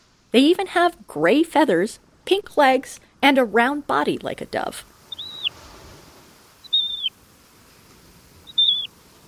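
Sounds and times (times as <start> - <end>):
faint breeze: 0.0 - 9.2
speech: 0.3 - 4.9
Magellanic plover giving thin high whistled calls: 5.1 - 5.6, 6.6 - 7.2, 8.4 - 9.0.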